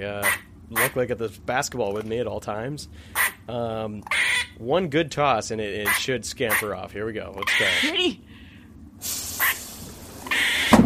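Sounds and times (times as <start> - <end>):
speech: 0.0 - 8.3
rushing hiss of air from emergency door opening: 9.0 - 10.1.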